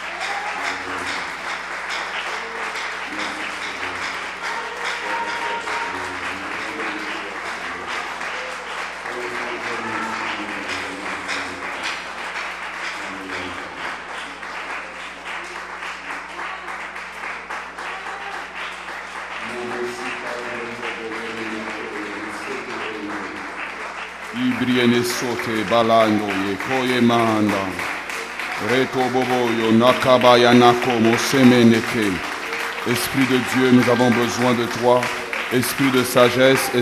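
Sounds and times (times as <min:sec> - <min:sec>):
church congregation applauding: 0:00.0 - 0:36.8
congregation voices cheering: 0:00.0 - 0:36.8
speech: 0:25.2 - 0:27.8, 0:28.6 - 0:36.8.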